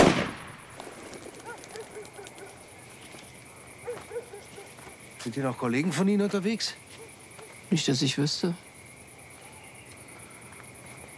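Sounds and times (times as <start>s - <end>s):
shotgun being fired: 0.0s - 0.8s
faint calls: 0.8s - 11.1s
speech: 5.2s - 6.9s, 7.7s - 8.6s.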